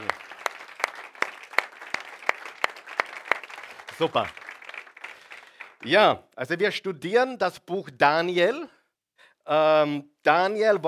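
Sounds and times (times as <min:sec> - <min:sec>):
audience applause: 0:00.0 - 0:06.0
speech: 0:04.0 - 0:04.4, 0:05.8 - 0:08.8, 0:09.5 - 0:10.8.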